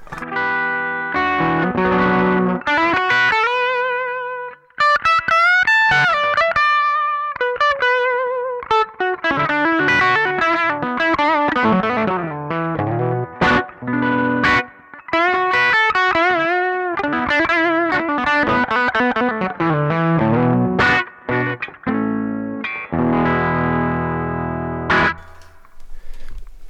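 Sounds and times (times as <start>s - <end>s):
Gibson Les Paul humbucker pickups driving an amplifier into natural breakup: 0.0s - 25.6s.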